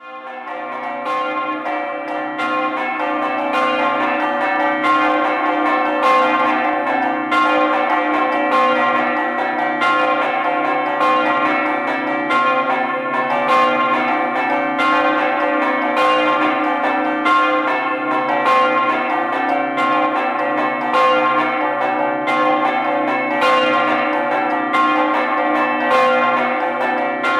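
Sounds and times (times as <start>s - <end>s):
bells: 0.0s - 27.3s.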